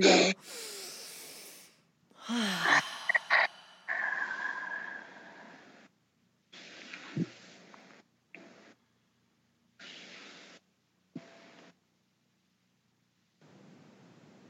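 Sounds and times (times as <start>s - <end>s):
group taking deep airy breaths: 0.0s - 5.9s.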